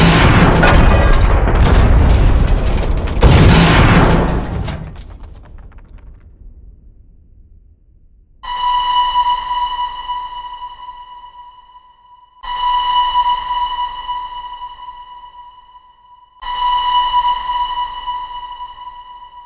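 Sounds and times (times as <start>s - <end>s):
loud heavy train crash with grinding rumbling metal: 0.0s - 5.8s
sustained ringing tones: 8.4s - 19.4s.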